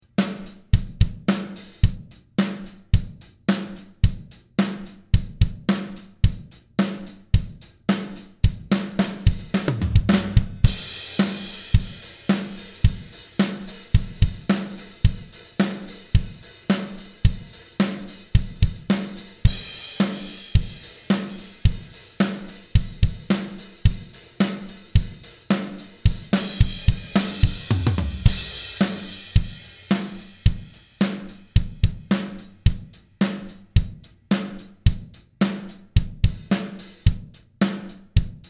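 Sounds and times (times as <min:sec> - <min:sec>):
mixed drums: 0:00.0 - 0:38.4.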